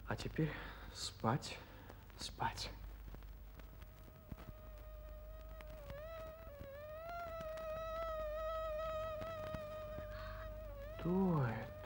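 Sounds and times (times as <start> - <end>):
speech: 0.1 - 2.8, 11.0 - 11.8
mosquito whine: 3.9 - 11.8.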